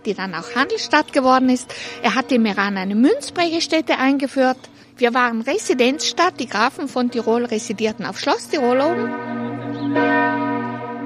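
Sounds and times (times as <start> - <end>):
speech: 0.0 - 9.4
large restored church bell of St. Nicholas Church in Meran ringing: 0.3 - 3.6, 5.4 - 11.0.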